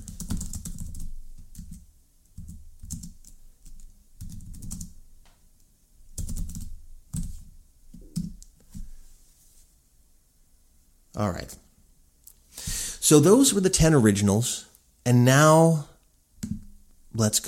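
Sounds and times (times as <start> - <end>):
typing on a computer keyboard: 0.0 - 5.0, 6.2 - 7.3
speech: 11.2 - 11.6, 13.1 - 15.9, 17.2 - 17.4.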